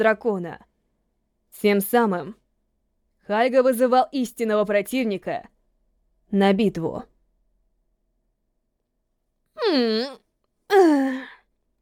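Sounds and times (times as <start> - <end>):
speech: 0.0 - 0.7, 1.5 - 2.4, 3.3 - 5.5, 6.3 - 7.1, 9.7 - 11.4
woman yawning sleepily in a wooden Japanese-style house: 9.6 - 11.4.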